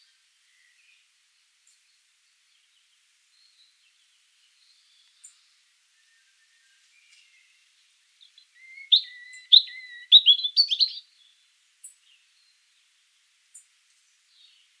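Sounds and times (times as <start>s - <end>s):
European robin Erithacus rubecula singing: 1.7s - 12.8s.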